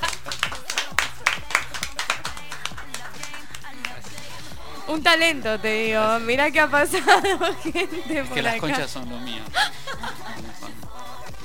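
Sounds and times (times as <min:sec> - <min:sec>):
laughter: 0:00.0 - 0:03.8, 0:06.8 - 0:10.8
small group applauding: 0:00.0 - 0:04.4
speech: 0:04.9 - 0:09.7.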